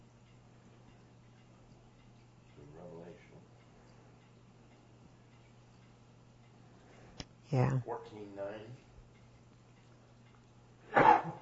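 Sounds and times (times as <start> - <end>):
faint low hum: 0.0 - 11.3
speech: 7.5 - 8.9
person sneezing: 10.9 - 11.3.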